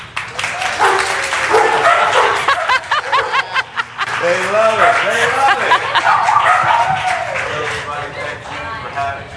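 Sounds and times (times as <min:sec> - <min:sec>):
steady noisy background: 0:00.0 - 0:09.3
several dogs barking and yipping: 0:00.8 - 0:03.6, 0:05.9 - 0:07.4
laughter: 0:02.1 - 0:08.8.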